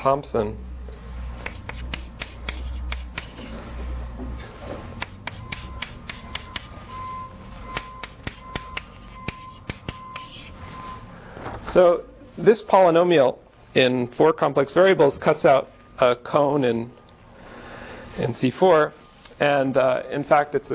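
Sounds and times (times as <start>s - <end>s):
speech: 0.0s - 0.7s, 11.8s - 17.0s, 18.2s - 20.7s
low room hum: 0.0s - 20.7s
chalk or marker writing on a board: 1.4s - 3.6s, 5.0s - 6.8s, 7.7s - 10.6s.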